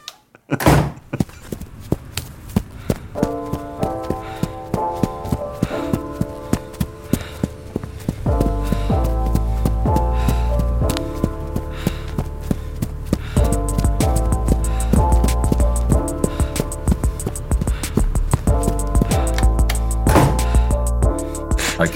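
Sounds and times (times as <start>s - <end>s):
hard clacking footstep sound effects: 0.9s - 21.9s.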